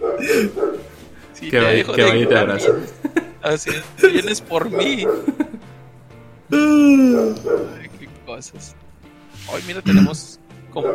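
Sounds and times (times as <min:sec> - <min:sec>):
dog giving a loud drawn-out bark sliding down in pitch: 0:00.0 - 0:00.9, 0:01.9 - 0:03.0, 0:04.6 - 0:05.6, 0:07.1 - 0:07.9, 0:10.8 - 0:10.9
speech: 0:00.2 - 0:00.7, 0:01.4 - 0:05.4, 0:06.5 - 0:07.8, 0:08.4 - 0:08.8, 0:09.5 - 0:10.9
laughter: 0:01.5 - 0:05.7.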